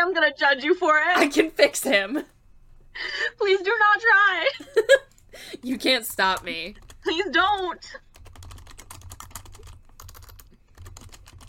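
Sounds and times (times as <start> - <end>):
speech: 0.0 - 2.4, 3.0 - 8.0
rapid typing on a computer keyboard: 6.3 - 11.4.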